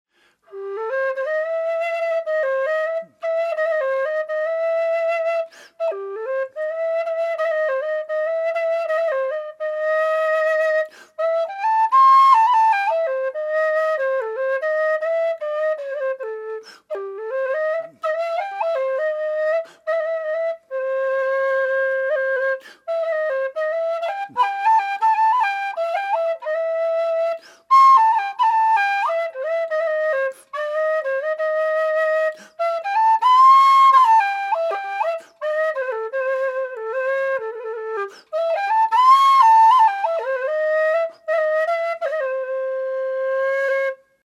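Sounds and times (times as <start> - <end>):
gypsy improvisation on whistles: 0.5 - 44.2.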